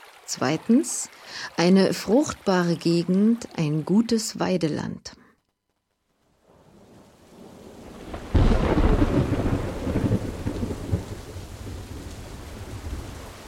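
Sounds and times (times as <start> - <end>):
heavy continuous downpour: 0.0 - 2.6, 6.4 - 13.4
speech: 0.3 - 5.2
thunderclap rolling into a deep rumble: 6.5 - 13.4.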